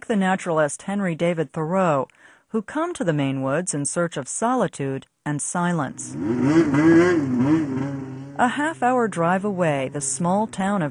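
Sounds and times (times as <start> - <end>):
speech: 0.1 - 10.9
snowmobile engine revving near the frozen Moosehead Lake in Maine: 5.9 - 10.9.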